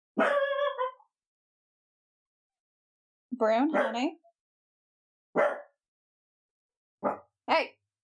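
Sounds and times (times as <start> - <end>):
dog barking: 0.2 - 1.0, 3.6 - 4.2, 5.4 - 5.8, 7.0 - 7.4
speech: 3.4 - 4.2.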